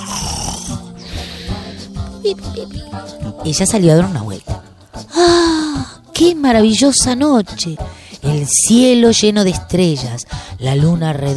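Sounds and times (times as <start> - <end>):
dwarfs snoring at night: 0.0 - 1.9
speech: 2.2 - 4.6, 6.2 - 11.3.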